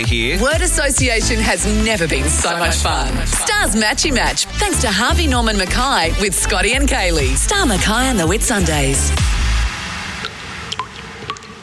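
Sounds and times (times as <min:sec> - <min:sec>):
speech: 0:00.0 - 0:09.4
water dripping in a bathroom: 0:10.2 - 0:11.6.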